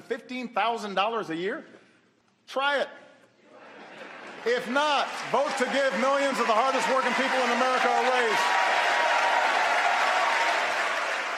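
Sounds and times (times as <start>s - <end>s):
speech: 0.1s - 1.8s, 2.5s - 3.0s, 4.4s - 8.7s
large assembly of lawmakers applauding during a speech: 4.0s - 11.3s.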